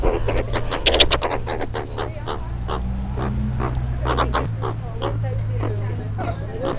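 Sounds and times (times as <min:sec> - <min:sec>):
Suricata suricata aggression: 0:00.0 - 0:06.7.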